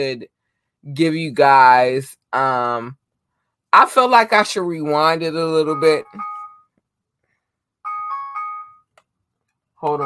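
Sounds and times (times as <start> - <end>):
speech: 0.0 - 3.0, 3.7 - 6.3, 9.8 - 10.0
bright electronic phone ringtone melody: 5.6 - 6.7, 7.8 - 9.0, 9.8 - 10.0
short chime-like blip: 5.8 - 6.6.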